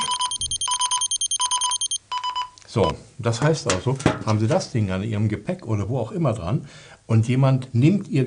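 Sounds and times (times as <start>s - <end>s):
tracker tag and phone out-of-range alarm beeping: 0.0s - 2.4s
speech: 2.8s - 8.2s.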